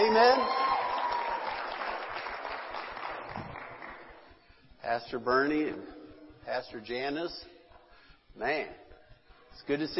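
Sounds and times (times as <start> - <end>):
audience clapping hands: 0.0 - 4.2
speech: 4.9 - 7.5, 8.4 - 8.8, 9.6 - 9.9.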